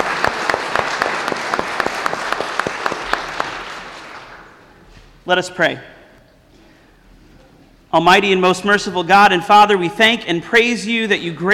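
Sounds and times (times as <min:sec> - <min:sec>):
sharp individual claps: 0:00.0 - 0:04.6
audience applauding at a church baptism service: 0:00.0 - 0:04.8
speech: 0:05.3 - 0:06.0, 0:07.9 - 0:11.5.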